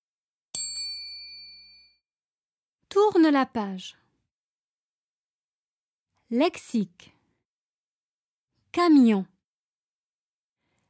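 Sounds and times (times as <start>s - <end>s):
small bell ringing: 0.6s - 2.0s
speech: 3.0s - 4.0s, 6.3s - 7.1s, 8.7s - 9.3s.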